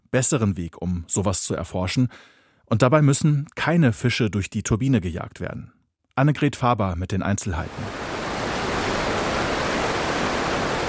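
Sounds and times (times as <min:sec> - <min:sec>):
speech: 0:00.1 - 0:08.0
rushing water in a laboratory test flume: 0:07.7 - 0:10.8.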